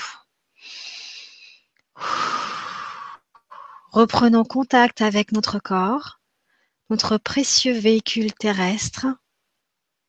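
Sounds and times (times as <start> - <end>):
slow deep breathing in and out: 0.6 - 3.9
speech: 3.9 - 6.2, 6.9 - 9.2.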